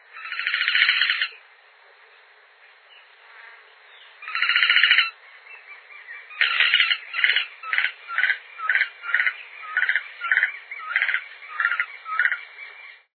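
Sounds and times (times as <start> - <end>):
pavaozinho-do-Para bird: 0.2 - 1.4, 3.8 - 13.1.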